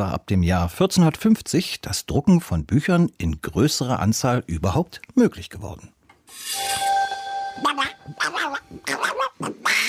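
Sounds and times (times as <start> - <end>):
speech: 0.0 - 6.8
sustained tonal hum: 6.3 - 9.0
cartoon duck voice quacking angrily: 7.6 - 9.8.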